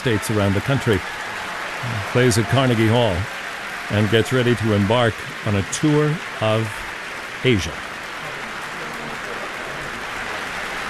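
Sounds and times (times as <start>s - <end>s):
speech: 0.0s - 7.8s
large audience applauding in a concert hall: 0.0s - 10.8s.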